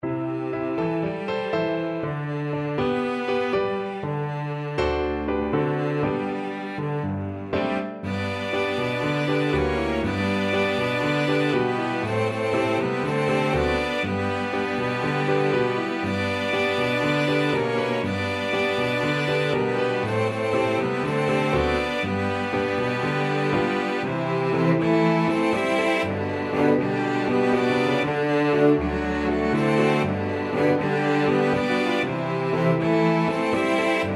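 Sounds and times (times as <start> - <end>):
piano: 0.0 - 34.1
flexible ensemble of three players: 8.1 - 34.1.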